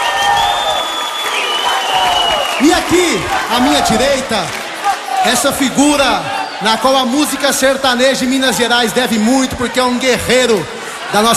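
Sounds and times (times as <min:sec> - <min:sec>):
audience applause at a sertaneja music show: 0:00.0 - 0:06.2
audience cheering: 0:00.0 - 0:11.3
speech: 0:02.9 - 0:04.6, 0:05.2 - 0:11.3.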